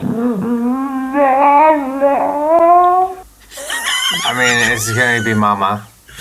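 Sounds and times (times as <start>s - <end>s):
dog making a warbling howl-whine: 0.0s - 3.3s
speech: 0.2s - 0.6s, 4.8s - 6.2s
laughter: 3.5s - 6.2s.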